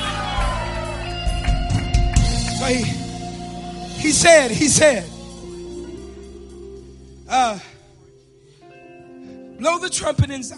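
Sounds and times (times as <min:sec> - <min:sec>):
large crowd shouting and yelling together: 0:00.0 - 0:01.5
speech: 0:02.7 - 0:03.0, 0:04.0 - 0:05.1, 0:07.3 - 0:07.7, 0:09.6 - 0:10.5.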